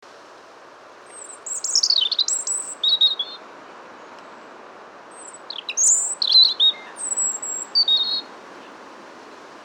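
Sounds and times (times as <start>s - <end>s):
low background hiss: 0.1s - 9.6s
European robin singing: 1.1s - 3.4s, 5.2s - 8.3s.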